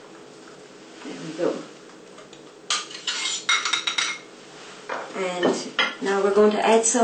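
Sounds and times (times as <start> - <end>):
speech: 1.3 - 1.7, 5.2 - 7.0
cake knife and spoon clinking and scraping against a dish cutting cake: 2.7 - 4.3.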